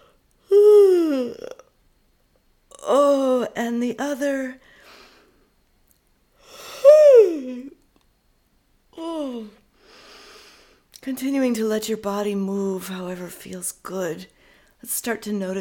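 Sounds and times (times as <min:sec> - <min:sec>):
person yawning while stretching during a breathing exercise: 0:00.4 - 0:01.7, 0:06.4 - 0:07.8, 0:09.0 - 0:09.6
speech: 0:03.7 - 0:04.6, 0:11.2 - 0:15.5.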